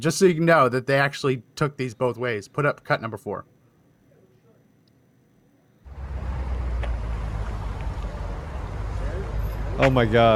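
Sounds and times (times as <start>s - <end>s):
speech: 0.0s - 3.5s, 9.8s - 10.3s
box truck engines rumbling: 5.9s - 10.3s
road and wind noise: 5.9s - 10.3s.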